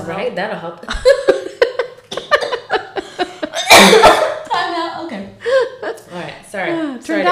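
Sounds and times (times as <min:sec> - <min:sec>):
speech: 0:00.1 - 0:01.4
laughter: 0:00.9 - 0:03.9
coughing fit of harsh coughs: 0:02.1 - 0:02.7, 0:03.4 - 0:04.5.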